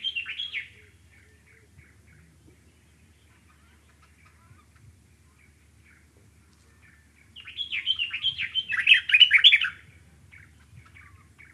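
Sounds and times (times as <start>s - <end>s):
Dark-capped bulbul giving liquid chortling notes in Okavango: 0.0s - 11.5s.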